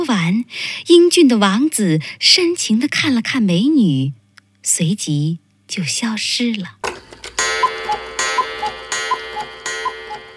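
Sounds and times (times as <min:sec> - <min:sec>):
speech: 0:00.4 - 0:06.8
clock chiming: 0:06.9 - 0:10.3.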